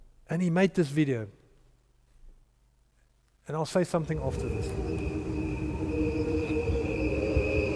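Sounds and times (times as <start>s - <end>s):
speech: 0.3s - 1.4s, 3.5s - 5.0s
crickets chirping at night in a backyard: 4.0s - 7.7s.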